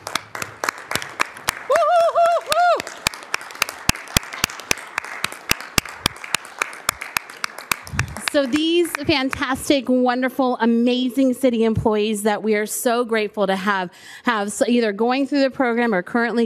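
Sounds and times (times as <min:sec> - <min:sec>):
audience applause for standing cohort members: 0:00.0 - 0:09.5
rising-and-falling whistle or whoop: 0:01.7 - 0:02.9
speech: 0:08.4 - 0:16.4.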